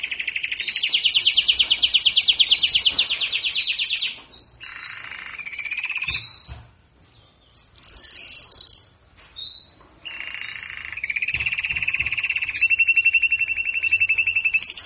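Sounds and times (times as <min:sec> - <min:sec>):
Belgian canary singing galador song type trills: 0:00.0 - 0:14.8.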